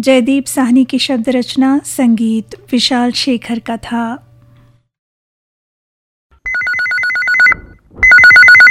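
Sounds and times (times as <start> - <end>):
speech: 0.0 - 4.3
telephone ringing with two-tone electronic trill: 6.5 - 8.6.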